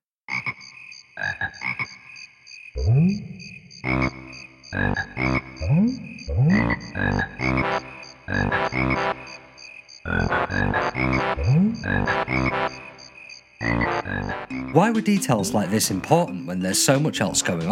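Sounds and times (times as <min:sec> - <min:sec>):
speech: 0:02.8 - 0:03.3, 0:14.8 - 0:17.7
cartoonish video game frog croaks forming a playful melody: 0:03.8 - 0:17.7
steady synthetic backing music: 0:07.2 - 0:09.5, 0:10.2 - 0:17.7.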